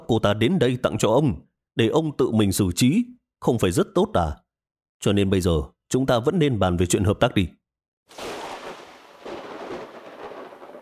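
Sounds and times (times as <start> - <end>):
speech: 0.1 - 4.4, 5.0 - 8.3
thunder rumbling during a storm: 8.1 - 10.8.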